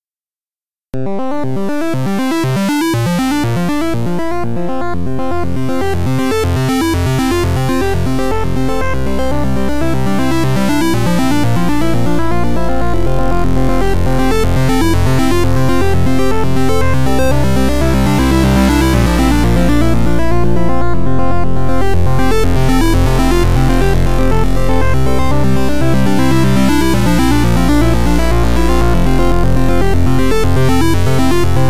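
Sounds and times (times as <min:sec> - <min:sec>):
synth arpeggio: 0:01.0 - 0:31.6.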